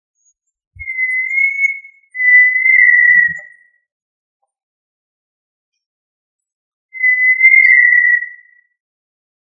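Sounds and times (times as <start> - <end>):
tinamou giving long steady pure whistles: 0.8 - 3.5, 7.0 - 8.5.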